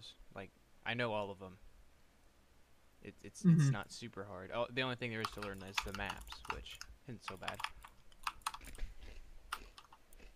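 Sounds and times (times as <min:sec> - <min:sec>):
speech: 0:00.0 - 0:01.7, 0:03.0 - 0:07.8
potato chips being chewed: 0:08.2 - 0:10.3.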